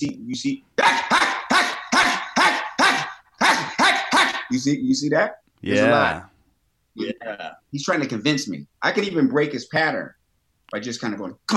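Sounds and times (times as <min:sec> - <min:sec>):
speech: 0:00.0 - 0:01.0, 0:04.5 - 0:06.3, 0:07.0 - 0:11.5
dog barking: 0:00.8 - 0:04.5.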